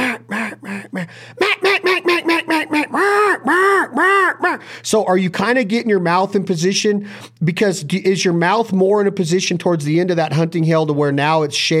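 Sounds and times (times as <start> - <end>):
speech: 0.3 - 1.6, 4.9 - 11.7
hunter's duck call imitating hen ducks in calling cadences: 1.4 - 4.7.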